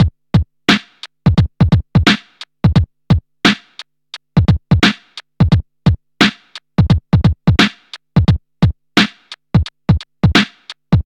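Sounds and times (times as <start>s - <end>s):
breakbeat sample in F sharp: 0.0s - 11.0s.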